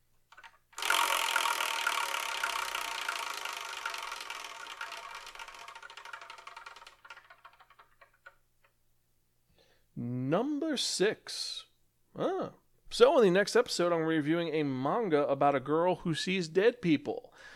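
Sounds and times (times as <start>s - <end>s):
prize wheel being spun: 0.3s - 8.7s
speech: 10.0s - 17.5s.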